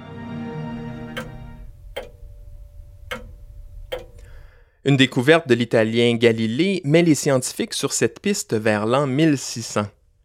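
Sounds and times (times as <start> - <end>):
low hum: 0.9 - 5.8
mechanical pendulum clock ticking: 1.0 - 5.5
speech: 4.8 - 10.0.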